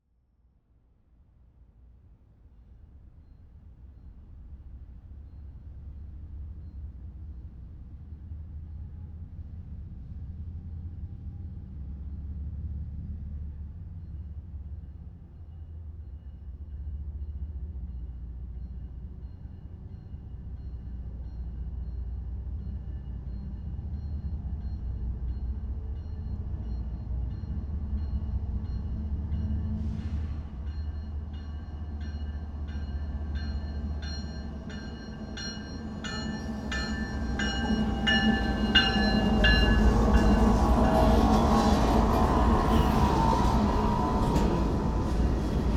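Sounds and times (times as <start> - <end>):
diesel-electric freight locomotive with three cars passing slowly: 2.4 - 45.7
freight locomotive bell ringing: 30.8 - 42.9.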